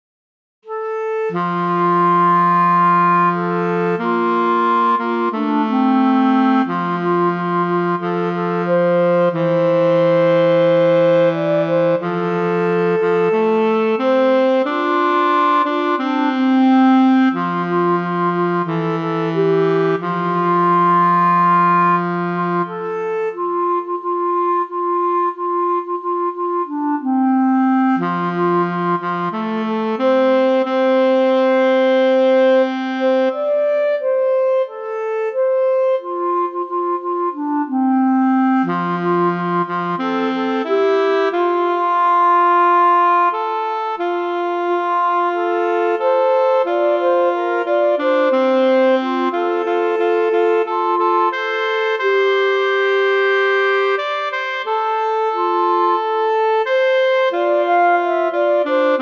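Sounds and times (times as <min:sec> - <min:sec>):
clarinet and saxophone duet: 0:00.7 - 0:59.0.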